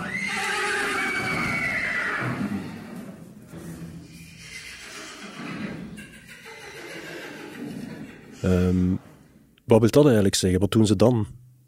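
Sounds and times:
horse whinnying while rearing up: 0:00.0 - 0:09.2
horse snorting and breathing roughly: 0:02.2 - 0:09.4
speech: 0:08.4 - 0:09.1, 0:09.7 - 0:11.4.

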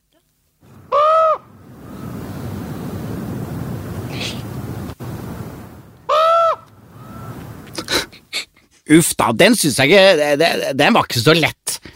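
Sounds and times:
steady outdoor hiss: 0:00.0 - 0:11.9
raven giving hoarse calls: 0:00.7 - 0:02.4, 0:06.0 - 0:08.3
speech: 0:08.9 - 0:11.6.

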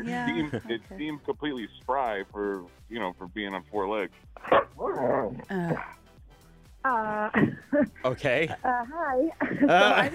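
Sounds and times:
laughter: 0:00.0 - 0:00.8, 0:09.4 - 0:10.1
speech: 0:00.0 - 0:06.0, 0:06.8 - 0:10.1
dog yipping barks: 0:04.4 - 0:05.3.

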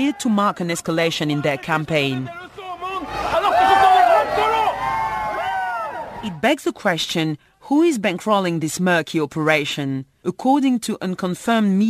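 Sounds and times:
speech: 0:00.0 - 0:03.3, 0:06.2 - 0:11.8
dense crowd at a demonstration in Antananarivo roaring and chanting: 0:00.0 - 0:06.3.

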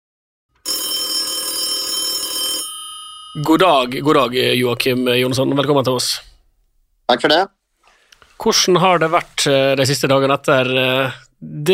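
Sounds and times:
telephone ringing with a bell-like ring: 0:00.6 - 0:04.2
speech: 0:03.4 - 0:06.3, 0:07.1 - 0:07.6, 0:08.4 - 0:11.7.

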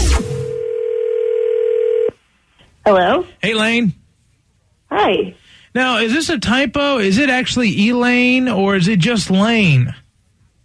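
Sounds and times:
telephone dial tone: 0:00.4 - 0:02.2
speech: 0:02.9 - 0:04.0, 0:04.9 - 0:10.0.

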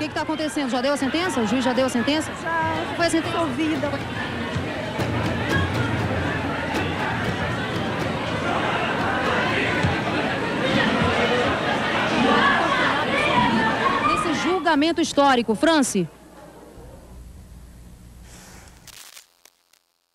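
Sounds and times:
crowd chatter of people leaving courthouse: 0:00.0 - 0:17.4
speech: 0:00.2 - 0:04.4, 0:14.7 - 0:16.2
sharp huff of breath through nose: 0:18.2 - 0:18.9.

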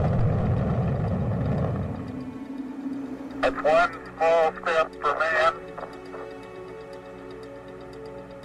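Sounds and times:
rocket engines roaring at launch: 0:00.0 - 0:02.3
speech: 0:03.5 - 0:05.6.

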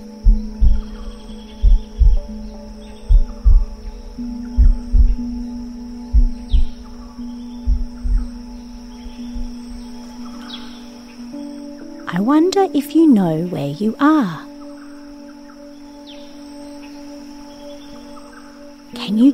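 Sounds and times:
steady heartbeat thumping in lub-dub pairs: 0:00.0 - 0:10.7
continuous low hum: 0:00.0 - 0:12.0
speech: 0:12.2 - 0:14.4.

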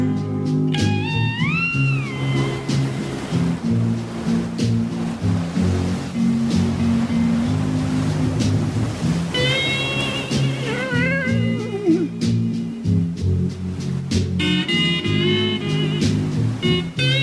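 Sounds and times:
low sustained musical tone: 0:00.0 - 0:17.2
steady surf washing onto a shore in smooth rolling swells: 0:00.0 - 0:17.2.

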